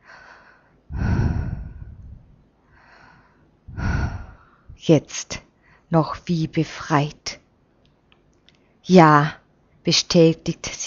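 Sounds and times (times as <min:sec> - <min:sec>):
deep breathing: 0:00.0 - 0:04.8
speech: 0:04.8 - 0:07.4, 0:08.9 - 0:10.8.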